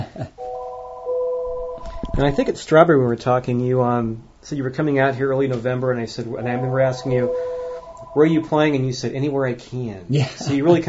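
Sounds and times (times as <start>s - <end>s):
telephone ringing in a kitchen: 0.4s - 2.5s, 6.4s - 8.9s
speech: 2.2s - 7.5s, 8.2s - 10.8s.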